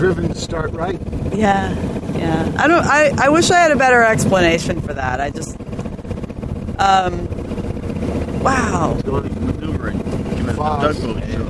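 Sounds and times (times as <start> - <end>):
speech: 0.0 - 5.6, 6.8 - 7.3, 8.4 - 9.8, 10.6 - 11.4
steady low engine drone: 0.0 - 11.4
wind buffeting the microphone: 0.0 - 11.4.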